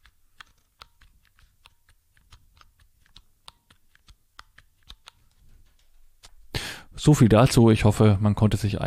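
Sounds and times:
braille keyboard keys clicking: 0.0 - 6.3
speech: 7.0 - 8.8.

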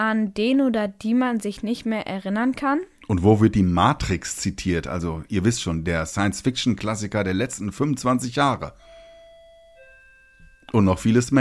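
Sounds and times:
speech: 0.0 - 8.9, 10.7 - 11.3
two-tone ding-dong doorbell chime: 8.8 - 11.3.

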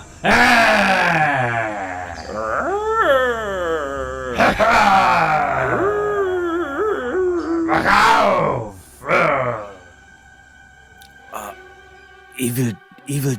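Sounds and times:
voices roaring while massaging muscles: 0.0 - 9.9, 11.3 - 11.6
speech: 12.5 - 13.3.

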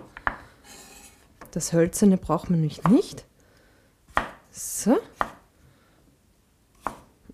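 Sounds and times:
speech: 1.5 - 3.3, 4.6 - 5.1
knife cutting off kohlrabi peel on a cutting board: 4.1 - 4.4, 5.2 - 5.4, 6.8 - 7.1.

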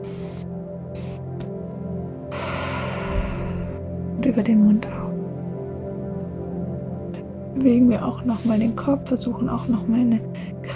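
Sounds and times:
short soft breath puffs: 2.3 - 3.8
speech: 4.3 - 5.1, 7.6 - 10.7.

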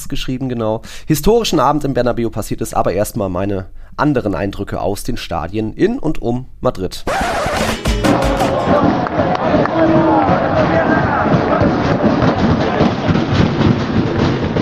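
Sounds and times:
speech: 0.0 - 10.4
sharp bangs: 7.1 - 9.2
dense crowd roaring: 7.6 - 12.5
fans pounding on steel scaffold stadium stands: 7.6 - 14.6.

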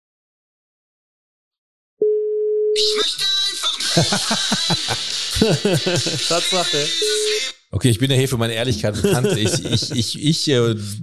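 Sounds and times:
mobile phone electronic telephone tone held to the microphone: 2.0 - 3.0, 7.0 - 7.4
laughter: 2.8 - 7.4, 8.6 - 11.0
speech: 4.0 - 11.0.

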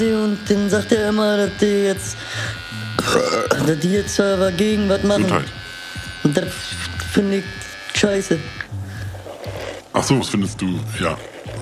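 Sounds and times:
speech: 0.0 - 5.6, 6.2 - 8.7, 10.0 - 11.5
electric razor buzzing while trimming ear hair: 0.0 - 11.5.

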